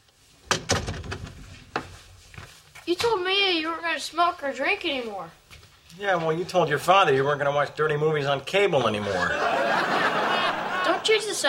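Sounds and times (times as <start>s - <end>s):
wooden door being pushed shut: 0.5s - 1.4s
speech: 2.9s - 5.4s, 6.0s - 10.0s, 11.0s - 11.4s
laughter: 9.0s - 11.4s.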